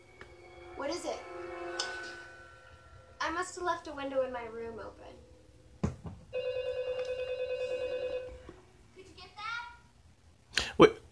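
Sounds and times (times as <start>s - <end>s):
speech: 0.8s - 1.5s, 3.5s - 5.3s, 10.8s - 11.0s
knocks and rustles: 5.8s - 6.3s
house phone ringing: 6.2s - 8.8s.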